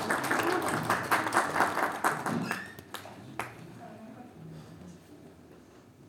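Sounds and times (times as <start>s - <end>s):
audience applauding: 0.0s - 3.6s.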